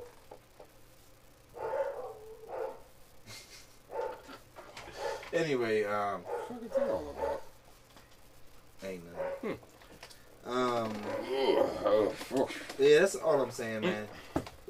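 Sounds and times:
dog barking: 1.5 - 2.9, 3.9 - 5.3, 6.2 - 7.5, 9.1 - 9.6
dog drawn-out yelping call: 1.6 - 2.8, 6.3 - 7.5, 9.2 - 9.6
speech: 5.4 - 7.4, 8.8 - 9.7, 10.5 - 14.3.

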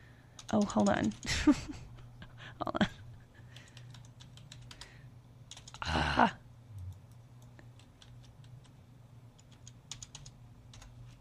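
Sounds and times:
typing on a computer keyboard: 0.4 - 1.3, 3.6 - 4.9, 5.5 - 5.8, 7.1 - 8.8, 9.4 - 11.0
speech: 0.5 - 1.9.

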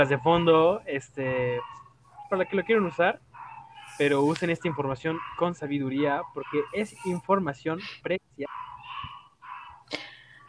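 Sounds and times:
speech: 0.0 - 3.3, 4.0 - 8.7
dog yelp: 1.4 - 7.3, 8.5 - 10.4
dog making drawn-out whining cries: 1.6 - 5.4, 6.0 - 7.3, 8.5 - 10.4.

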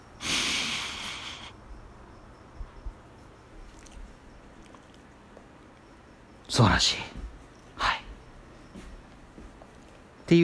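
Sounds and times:
person sniffing deeply into a pet's belly: 0.2 - 1.5
speech: 6.5 - 7.2.

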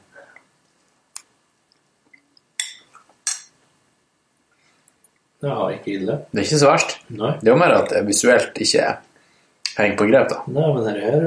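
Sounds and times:
bowls of natto clinking together in a toast: 2.6 - 3.6
speech: 5.4 - 9.1, 9.8 - 11.2.

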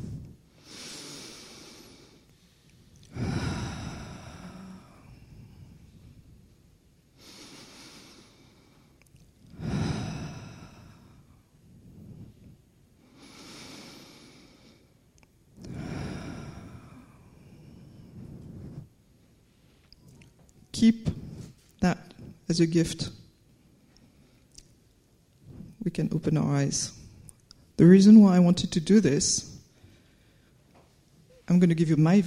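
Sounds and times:
slow deep breaths: 0.0 - 6.5, 7.2 - 15.0, 15.6 - 20.0, 21.0 - 22.5, 25.3 - 25.8, 29.5 - 31.4
speech: 20.8 - 21.2, 22.5 - 23.2, 26.0 - 27.0, 27.8 - 29.5, 31.5 - 32.2.

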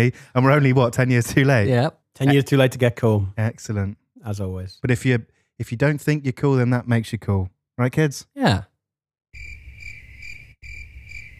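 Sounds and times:
speech: 0.0 - 8.7
high-pitched crickets chirping: 9.4 - 11.3.

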